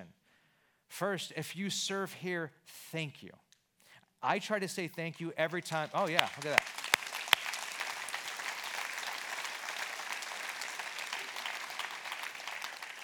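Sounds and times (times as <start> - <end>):
speech: 0.9 - 3.4, 4.2 - 6.8
large crowd applauding: 5.4 - 13.0.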